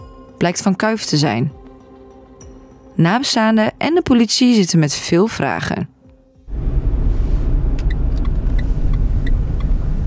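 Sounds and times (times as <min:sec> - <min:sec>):
speech: 0:00.4 - 0:01.6, 0:03.0 - 0:06.0
car engine and road noise driving onto holiday park grounds: 0:06.2 - 0:10.0.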